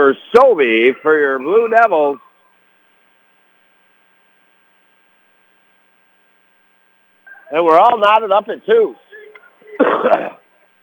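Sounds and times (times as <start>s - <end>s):
speech: 0.0s - 2.2s, 7.5s - 9.0s, 9.8s - 10.4s
cough or throat clearing: 9.8s - 10.5s.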